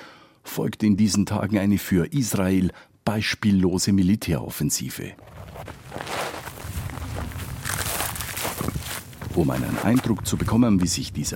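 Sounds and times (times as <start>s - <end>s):
speech: 0.6s - 6.1s, 9.4s - 11.3s
boots marching through dry thorny scrub up a hill: 5.2s - 10.6s.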